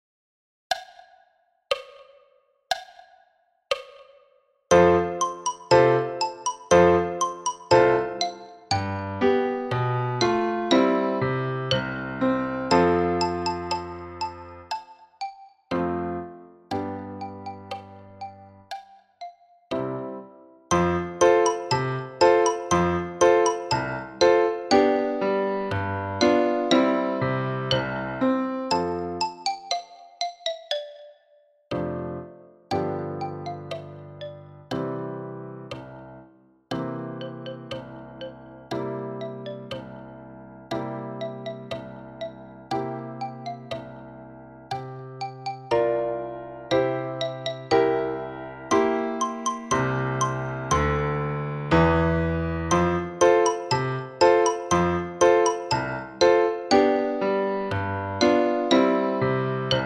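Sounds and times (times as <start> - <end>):
piano: 4.7 - 14.9, 15.7 - 18.8, 19.7 - 30.8, 31.7 - 59.8
xylophone: 4.7 - 19.9, 20.7 - 32.0, 32.7 - 35.0, 36.8 - 59.8.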